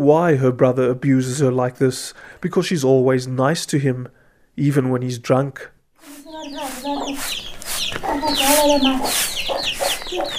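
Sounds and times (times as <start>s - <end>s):
speech: 0.0s - 10.3s
chickens clucking and squawking around a hut with a mud floor: 6.0s - 10.3s.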